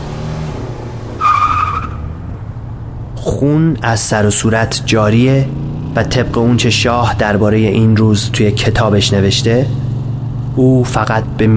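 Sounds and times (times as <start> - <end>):
Rolls-Royce car engine low rumble: 0.0 - 11.5
tyres screeching as a Rolls-Royce speeds off: 1.2 - 2.2
speech: 3.2 - 9.9, 10.6 - 11.5.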